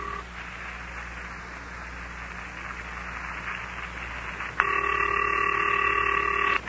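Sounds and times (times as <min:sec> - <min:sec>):
continuous electronic telephone ringing tone: 0:00.0 - 0:00.3, 0:04.6 - 0:06.6
telephone line hum with steady hiss: 0:00.0 - 0:06.6.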